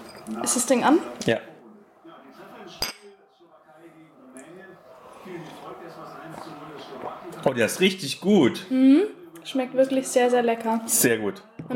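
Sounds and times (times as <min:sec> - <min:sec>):
glasses of iced tea clinking in a toast: 0:00.0 - 0:00.4, 0:02.8 - 0:03.2
speech: 0:00.3 - 0:01.5, 0:07.4 - 0:11.7.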